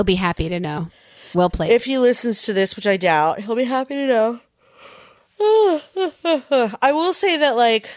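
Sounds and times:
speech: 0.0 - 4.4, 5.4 - 7.9
person yawning with a falling groan: 5.4 - 6.6.

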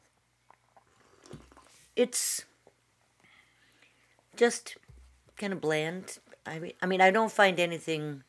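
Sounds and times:
person sipping hot tea with honey: 0.4 - 2.0
swallowing: 0.5 - 1.8
speech: 2.0 - 2.5, 4.4 - 4.8, 5.4 - 8.2.

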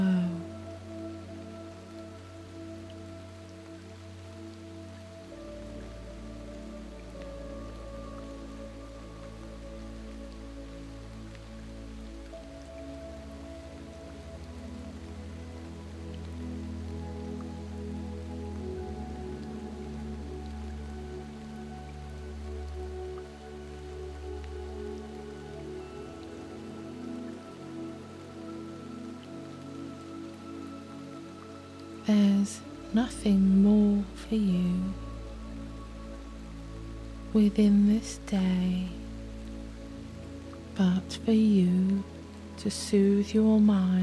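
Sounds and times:
soft sustained music tones: 0.0 - 44.0
steady rain: 0.0 - 44.0
speech: 32.1 - 35.0, 37.4 - 39.0, 40.8 - 44.0.

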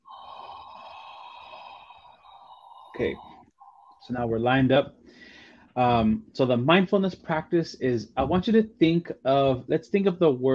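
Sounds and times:
heavy rasping exhale during a mindfulness breathing exercise: 0.0 - 4.1
speech: 3.0 - 3.3, 4.0 - 5.0, 5.8 - 10.5.

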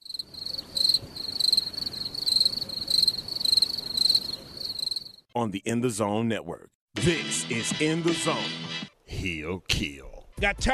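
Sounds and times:
crickets chirping: 0.0 - 5.3
speech: 5.4 - 10.7.

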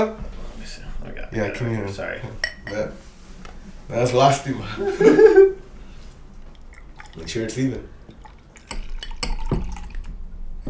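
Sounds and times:
speech: 0.0 - 3.1, 3.9 - 5.6, 7.2 - 8.0
laughter: 4.6 - 5.7
beer pouring into a glass: 6.5 - 10.2
glassware clinking: 8.6 - 10.0.

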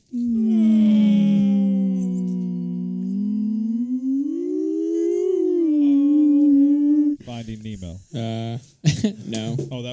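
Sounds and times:
person imitating a beluga whale call: 0.0 - 7.2.

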